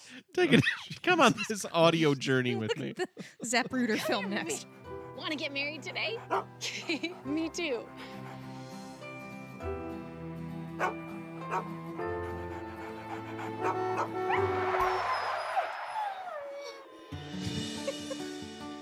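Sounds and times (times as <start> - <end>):
speech: 0.1 - 8.3, 10.8 - 12.2, 13.4 - 14.9
laughter: 0.4 - 4.8, 5.9 - 8.6, 16.3 - 18.6
several dogs barking and whimpering: 3.6 - 18.4
steady tonal background: 3.7 - 18.8.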